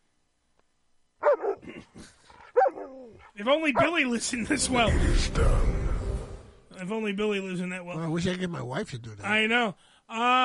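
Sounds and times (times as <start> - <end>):
smart speaker playing recorded dog barking: 1.2 - 1.7, 2.4 - 4.1
speech: 3.4 - 5.8, 6.8 - 10.4.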